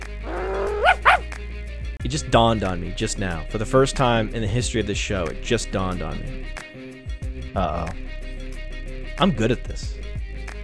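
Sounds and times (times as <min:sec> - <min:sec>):
person imitating a dog growl: 0:00.2 - 0:01.2
speech: 0:02.0 - 0:06.7, 0:07.6 - 0:08.0, 0:09.2 - 0:10.0.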